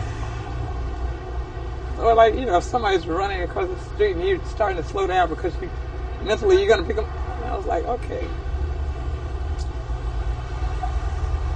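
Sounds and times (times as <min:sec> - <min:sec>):
large truck roaring past with droning engine: 0:00.0 - 0:02.1, 0:08.2 - 0:11.5
speech: 0:02.1 - 0:08.5.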